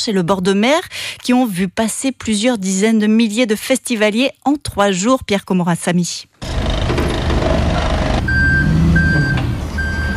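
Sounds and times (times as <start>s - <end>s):
speech: 0.0s - 6.6s
rumbling engine: 6.4s - 10.1s
reversing alarm of a truck or lift vehicle at a festival site: 7.9s - 10.1s.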